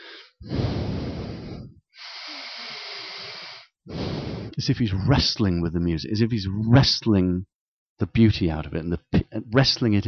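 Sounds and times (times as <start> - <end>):
pianist breathing heavily while playing: 0.0 - 4.6
speech: 4.6 - 10.0.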